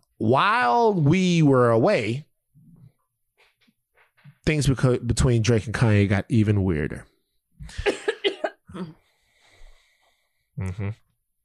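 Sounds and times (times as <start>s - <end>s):
speech: 0.2s - 2.3s, 4.5s - 7.9s, 10.6s - 11.0s
person coughing harshly: 7.7s - 9.0s
faint breathing: 9.0s - 10.6s.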